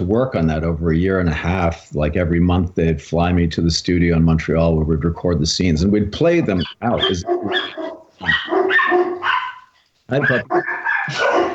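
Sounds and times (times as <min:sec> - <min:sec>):
speech: 0:00.0 - 0:08.5, 0:10.1 - 0:11.5
several rescue dogs barking at door: 0:06.2 - 0:11.5.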